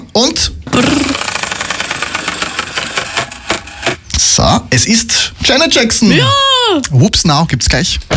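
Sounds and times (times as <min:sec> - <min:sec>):
speech: 0:00.2 - 0:01.2, 0:04.4 - 0:08.1
prize wheel spinning and clicking: 0:01.1 - 0:03.9.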